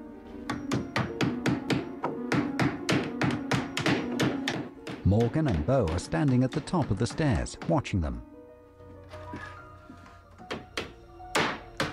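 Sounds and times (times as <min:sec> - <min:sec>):
hammering as boards are nailed over a door: 0:00.5 - 0:07.9, 0:10.3 - 0:11.9
speech: 0:05.1 - 0:08.3.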